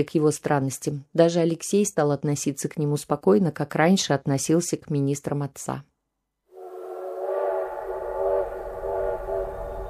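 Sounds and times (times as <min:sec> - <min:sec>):
speech: 0:00.0 - 0:05.9
steam locomotive whistle: 0:06.6 - 0:09.8.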